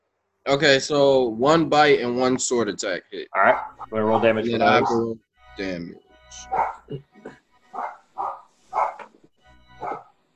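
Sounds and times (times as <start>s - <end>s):
speech: 0.5s - 7.4s
dogs barking: 3.4s - 5.1s, 6.4s - 6.9s, 7.7s - 9.2s, 9.8s - 10.1s.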